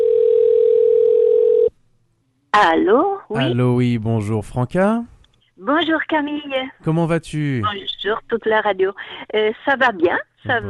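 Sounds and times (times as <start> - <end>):
telephone dial tone while placing a call: 0.0 - 1.7
speech: 2.6 - 10.6.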